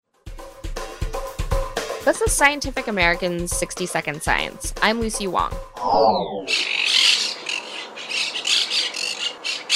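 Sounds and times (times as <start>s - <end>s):
speech: 2.0s - 6.8s
brief descending tone: 5.8s - 6.7s
monk parakeets nesting in Chicago squawking: 5.8s - 9.7s.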